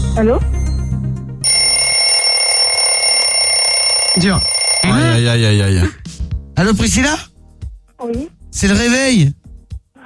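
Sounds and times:
speech: 0.2 - 0.6, 4.2 - 6.0, 6.6 - 7.3, 8.0 - 9.4
telephone ringing with electronic bell tone: 1.4 - 5.2.

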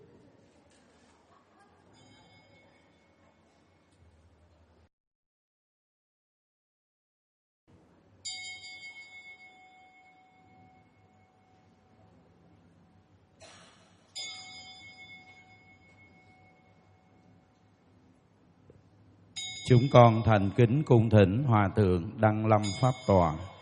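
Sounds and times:
Buddhist temple bell struck to invite the abbot: 2.0 - 3.4, 8.2 - 12.3, 14.1 - 18.2, 19.2 - 23.6
speech: 19.7 - 23.5.

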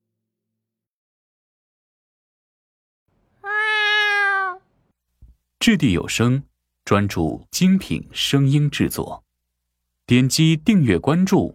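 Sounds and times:
white cat meowing: 3.4 - 4.6
speech: 5.6 - 9.3, 10.1 - 11.5.

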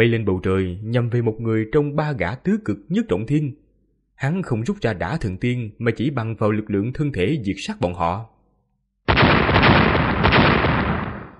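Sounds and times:
speech: 0.0 - 3.6, 4.2 - 8.3
explosions in quick succession: 9.1 - 11.3.

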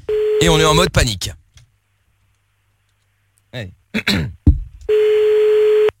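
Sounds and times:
steady electronic telephone ring tone as a call is placed: 0.1 - 0.5, 4.9 - 5.9
speech: 0.4 - 1.4, 3.6 - 4.4.

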